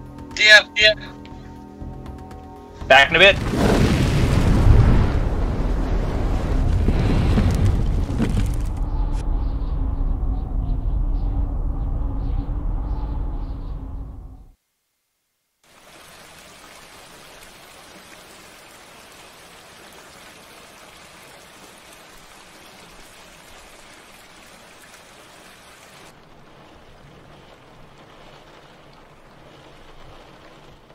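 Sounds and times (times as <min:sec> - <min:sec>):
steady rain pouring down outside: 0:00.0 - 0:01.1, 0:02.2 - 0:09.8, 0:15.6 - 0:30.9
speech: 0:00.4 - 0:01.2, 0:02.9 - 0:03.8
brief low rumble: 0:03.3 - 0:14.6.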